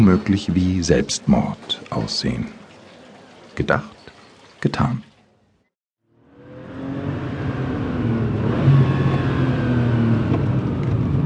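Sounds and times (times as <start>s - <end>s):
speech: 0.0s - 2.6s, 3.6s - 4.0s, 4.6s - 5.1s
big Porsche car engine roaring speeding up an access road: 6.1s - 11.2s.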